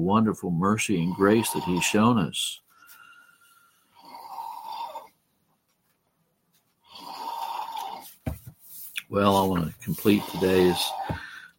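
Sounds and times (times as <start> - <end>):
speech: 0.0 - 2.6, 9.1 - 11.5
person snoring loudly: 1.0 - 2.1, 3.1 - 5.2, 6.8 - 8.2, 9.4 - 11.5.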